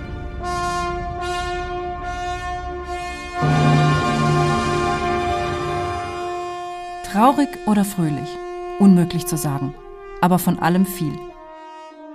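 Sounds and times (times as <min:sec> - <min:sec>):
sustained orchestral horn tones: 0:00.0 - 0:12.1
speech: 0:07.1 - 0:11.3.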